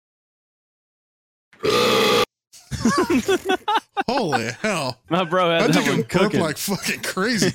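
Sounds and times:
speech: 1.6 - 1.9, 2.8 - 7.5
loud deep burp: 1.6 - 2.3
laughter: 2.6 - 7.5.

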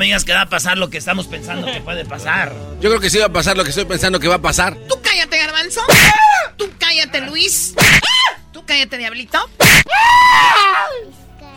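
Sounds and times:
speech: 0.0 - 11.2
loud harsh strained human scream: 5.9 - 6.6, 7.8 - 8.4, 9.6 - 11.0.

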